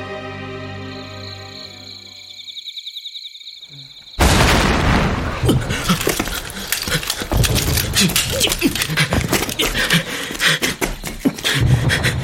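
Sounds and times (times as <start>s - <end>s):
explosion boom from an enemy attack: 4.2s - 5.7s
dense clatter of cracks and thuds: 4.2s - 12.1s.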